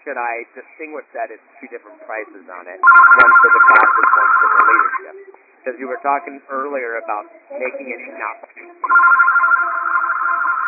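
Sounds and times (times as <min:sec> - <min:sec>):
speech: 0:00.1 - 0:09.7
telephone ringing with bright buzzing tone: 0:02.8 - 0:05.1, 0:08.8 - 0:10.6.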